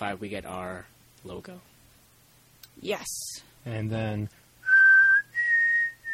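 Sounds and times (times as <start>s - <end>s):
speech: 0.0s - 1.7s, 2.8s - 4.4s
person whistling a short tune: 4.6s - 6.1s.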